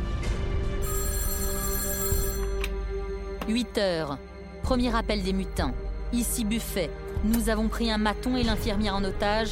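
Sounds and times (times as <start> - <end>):
telephone bell ringing with a metallic jangle: 0.8 - 2.9
speech: 3.5 - 9.4.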